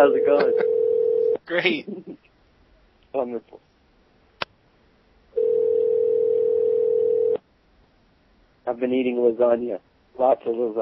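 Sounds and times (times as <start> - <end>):
speech: 0.0 - 0.7, 1.5 - 2.2, 3.1 - 3.7, 8.7 - 10.8
telephone dial tone: 0.4 - 1.4, 5.4 - 7.4.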